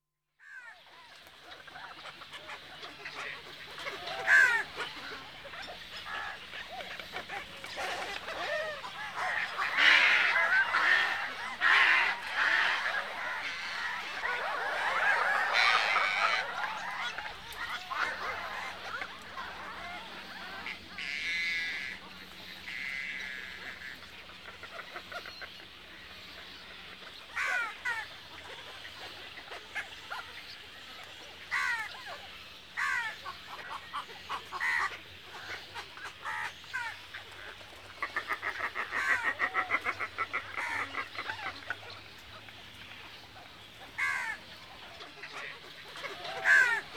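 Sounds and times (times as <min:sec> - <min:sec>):
Asian darter and water birds calling: 0:01.2 - 0:46.9.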